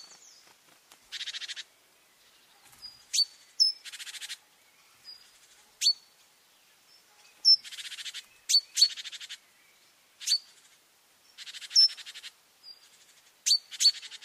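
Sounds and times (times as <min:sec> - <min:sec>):
Great tit churr calls, Parus major: 0:01.1 - 0:01.7, 0:02.4 - 0:06.2, 0:06.9 - 0:09.5, 0:10.2 - 0:14.2.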